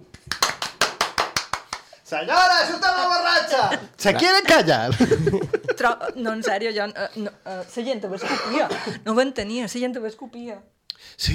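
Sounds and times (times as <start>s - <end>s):
applause: 0.1s - 1.9s
speech: 2.1s - 11.3s
laughter: 3.4s - 6.4s.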